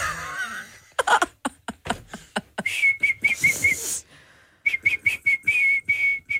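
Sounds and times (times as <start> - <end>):
breathy laugh-like bursts: 0.0 - 2.7
shrill whistle blasts: 2.7 - 4.0, 4.6 - 6.3.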